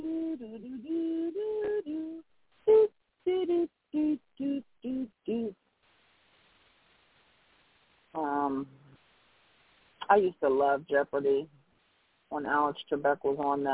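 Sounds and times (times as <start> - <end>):
single voice humming a short bouncy melody: 0.0 - 5.6
speech: 10.1 - 11.6, 12.3 - 13.7.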